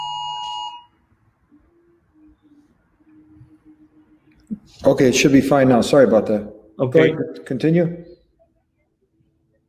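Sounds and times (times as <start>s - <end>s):
loud sharp electronic alarm system beep: 0.0s - 1.0s
low intermittent tone: 0.0s - 5.5s
speech: 4.6s - 8.1s.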